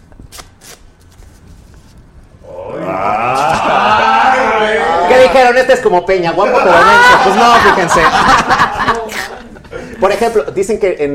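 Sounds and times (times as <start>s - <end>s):
magician shuffling a deck of playing cards: 0.0s - 2.2s
laughter: 2.9s - 5.5s, 6.4s - 10.6s
speech: 5.3s - 9.0s, 10.0s - 11.1s.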